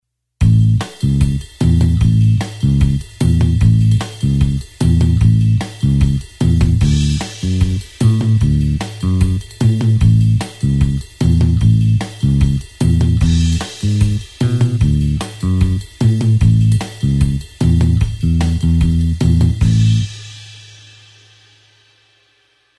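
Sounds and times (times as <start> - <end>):
blues bassline in 8beat: 0.4 - 20.3.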